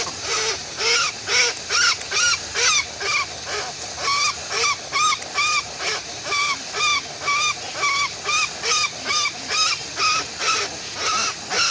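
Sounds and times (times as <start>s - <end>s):
Westland petrel calling: 0.0s - 11.6s.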